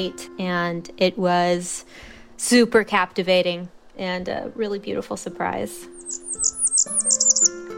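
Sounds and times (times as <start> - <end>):
speech: 0.0 - 5.9, 7.0 - 7.7
Blackburnian warbler singing: 5.9 - 7.6.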